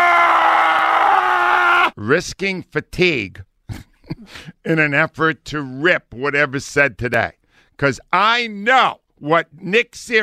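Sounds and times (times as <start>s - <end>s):
man screaming loudly: 0.0s - 2.0s
speech: 2.0s - 10.2s.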